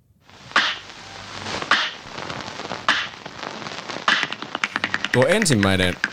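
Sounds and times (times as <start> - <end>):
dense crackling video game clicks: 0.3 - 6.1
sharp bright video game pops: 0.3 - 6.1
speech: 5.2 - 6.1.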